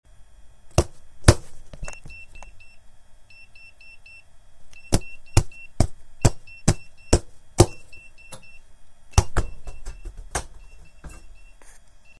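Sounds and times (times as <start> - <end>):
foam ball beeping: 1.8 - 12.1.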